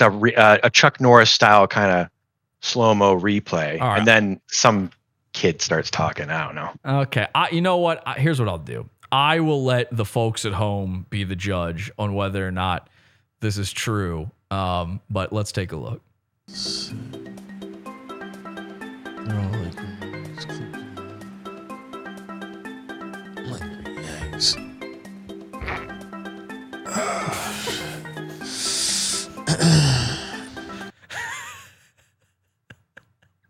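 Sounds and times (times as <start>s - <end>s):
speech: 0.0s - 17.3s, 19.2s - 20.6s, 24.4s - 24.7s
steady music: 3.8s - 4.2s, 16.5s - 31.6s
wet fart in a played video: 25.5s - 26.1s.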